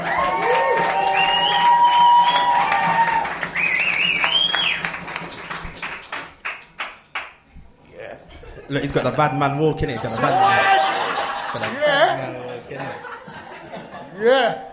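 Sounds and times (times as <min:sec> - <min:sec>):
live-show audience cheering: 0:00.0 - 0:06.0, 0:09.2 - 0:12.3
live-show audience clapping: 0:00.0 - 0:07.5, 0:10.3 - 0:12.1
shrill audience whistles: 0:00.9 - 0:05.0
laughter: 0:08.2 - 0:14.7
speech: 0:08.7 - 0:10.7, 0:11.5 - 0:13.1, 0:14.2 - 0:14.7.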